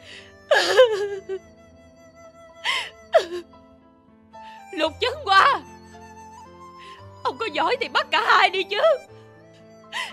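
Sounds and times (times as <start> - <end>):
woman crying with a breaking voice: 0.5 - 1.4
speech: 0.9 - 1.6, 4.8 - 5.7, 7.4 - 9.1.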